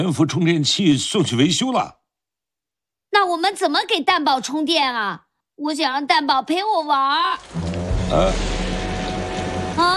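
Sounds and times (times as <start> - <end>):
speech: 0.0 - 2.0, 3.2 - 8.6, 9.8 - 9.9
steady rain: 7.3 - 9.9.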